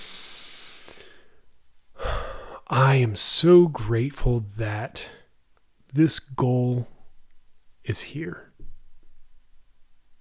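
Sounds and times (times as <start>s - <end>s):
deep breath drawn in and let out: 0.0s - 2.7s
speech: 2.7s - 5.2s, 5.9s - 7.0s, 7.9s - 8.5s.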